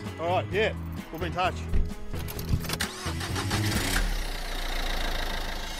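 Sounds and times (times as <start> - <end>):
speech: 0.2 - 1.8
car engine cranking and idling in a car park: 1.8 - 5.7.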